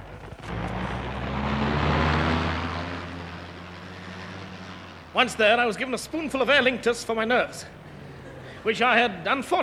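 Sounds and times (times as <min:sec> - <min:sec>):
aircraft engine drone at an airport: 0:00.0 - 0:06.4
speech: 0:05.2 - 0:07.8, 0:08.6 - 0:09.6.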